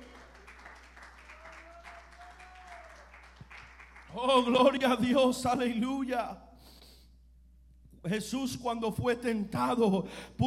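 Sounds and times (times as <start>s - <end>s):
congregation applauding: 0.0s - 4.6s
speech: 4.2s - 6.5s, 8.0s - 10.4s.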